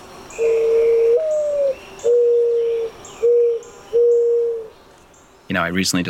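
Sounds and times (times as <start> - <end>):
mourning dove plaintive cooing: 0.1 - 4.9
speech: 5.5 - 6.0.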